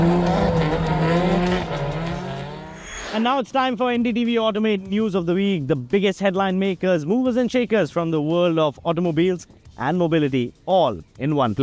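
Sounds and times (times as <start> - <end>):
drifting car engine droning in Tokyo Japan: 0.0 - 3.2
drifting car tires squealing in a sustained high whine: 0.0 - 3.2
speech: 3.2 - 11.6.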